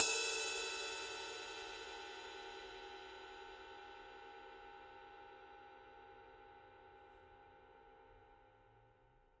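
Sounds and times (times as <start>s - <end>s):
20-inch bronze alloy ride cymbal: 0.0s - 3.1s.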